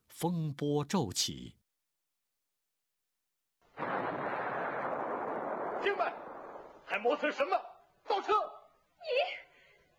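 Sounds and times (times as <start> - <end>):
speech: 0.2 - 1.6, 6.9 - 9.2
artillery shell explosions: 3.7 - 6.9.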